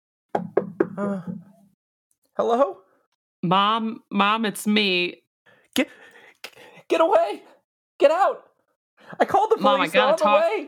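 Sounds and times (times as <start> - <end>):
sharp hard knocks on a door: 0.3 - 1.6
speech: 1.0 - 1.5, 2.4 - 2.8, 3.4 - 5.2, 5.8 - 10.6.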